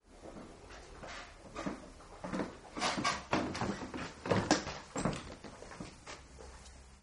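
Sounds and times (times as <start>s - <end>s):
footsteps: 0.1s - 6.8s.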